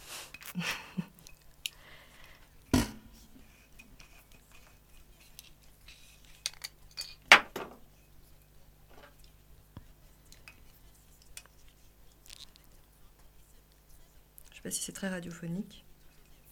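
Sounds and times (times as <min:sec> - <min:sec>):
speech: 0:00.6 - 0:00.8, 0:14.7 - 0:15.9
corkscrew clinking and scraping into a wine bottle: 0:03.8 - 0:07.3, 0:10.3 - 0:12.7.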